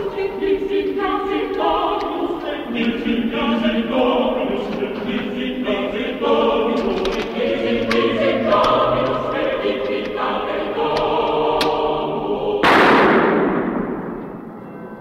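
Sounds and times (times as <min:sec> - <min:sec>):
dense noisy film soundtrack: 0:00.0 - 0:15.0
gunshots from a film: 0:12.6 - 0:14.4.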